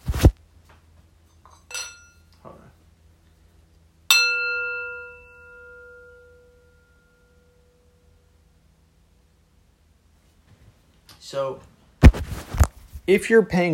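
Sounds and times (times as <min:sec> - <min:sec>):
singing bowl struck and ringing with high and low notes: 0:04.1 - 0:08.3
speech: 0:11.3 - 0:11.7, 0:13.1 - 0:13.7.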